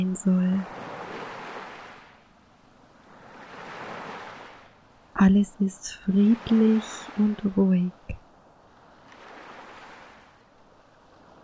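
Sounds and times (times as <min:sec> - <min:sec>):
speech: 0:00.0 - 0:00.8, 0:05.2 - 0:08.2
small ocean waves washing onto shore: 0:00.2 - 0:05.1, 0:06.0 - 0:11.4.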